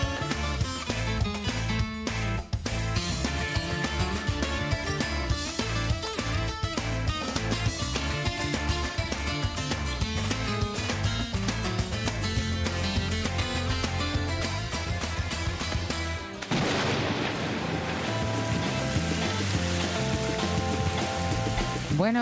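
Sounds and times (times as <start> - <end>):
music: 0.0 - 22.1
heavy rain pouring down: 16.4 - 21.9.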